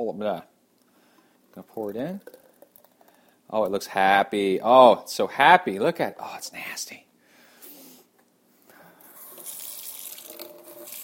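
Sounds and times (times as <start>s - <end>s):
speech: 0.0s - 0.5s, 1.6s - 2.4s, 3.5s - 7.1s
water spraying from a kitchen sink sprayer rinsing out a blender: 9.1s - 11.0s.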